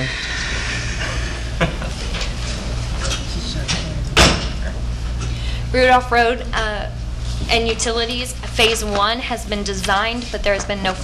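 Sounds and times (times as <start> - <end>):
steady low hum: 0.0 - 11.0
laughter: 1.0 - 2.8
door closing thud: 3.7 - 4.6
speech: 5.8 - 11.0.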